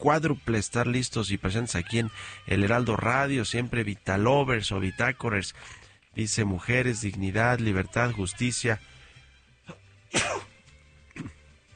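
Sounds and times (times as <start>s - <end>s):
speech: 0.0s - 8.9s, 9.7s - 10.5s
person sneezing: 9.7s - 11.4s.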